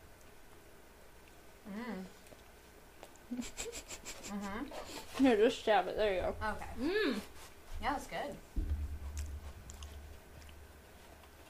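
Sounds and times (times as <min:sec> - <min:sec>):
speech: 0:01.7 - 0:02.2, 0:03.3 - 0:08.7
soft moist chewing of an iced cupcake: 0:02.1 - 0:03.6, 0:08.9 - 0:11.4.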